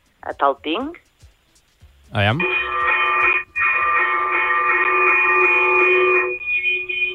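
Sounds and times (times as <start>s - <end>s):
speech: 0.2s - 1.0s, 2.1s - 2.9s
church bell ringing fast fire alarm toll: 2.4s - 7.1s.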